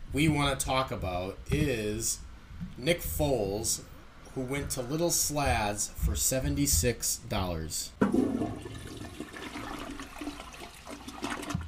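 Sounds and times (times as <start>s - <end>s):
speech: 0.1s - 8.4s
toilet flush with water rushing down the drain: 8.0s - 11.6s.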